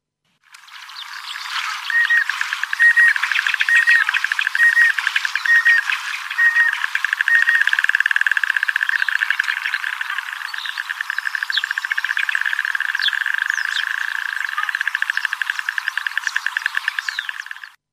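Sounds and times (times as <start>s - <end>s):
white-headed duck Oxyura leucocephala calling with a buzzy rattle: 0.6s - 17.8s.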